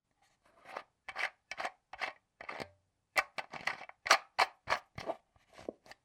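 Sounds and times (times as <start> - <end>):
lid sound: 0.6 - 5.2.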